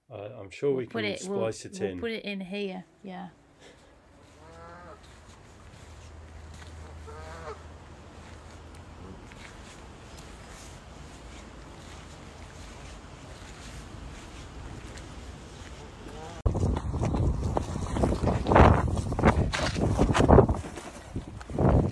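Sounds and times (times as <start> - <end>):
speech: 0.5 - 3.8
steady low rumble of outdoor noise: 2.7 - 21.9
goose honking as it attacks a person at a pub: 4.1 - 5.2, 6.7 - 7.8, 15.8 - 16.4.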